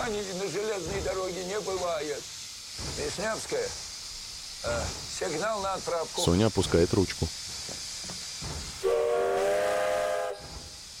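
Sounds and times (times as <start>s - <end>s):
steam locomotive releasing steam from beneath its wheels: 0.0s - 10.9s
speech: 0.1s - 3.9s, 4.6s - 7.5s.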